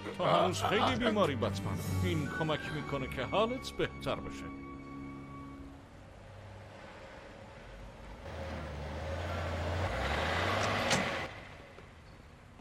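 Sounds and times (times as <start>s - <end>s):
speech: 0.2s - 4.6s
heavy truck engine rumbling: 8.3s - 11.4s.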